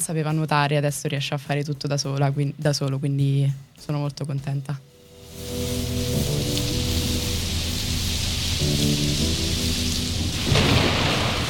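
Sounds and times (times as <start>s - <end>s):
speech: 0.0s - 4.9s, 8.8s - 11.1s
soft sustained musical tones in a music intro: 4.8s - 11.4s
steady rain: 5.0s - 11.4s
low thunder rumbling: 10.1s - 11.4s.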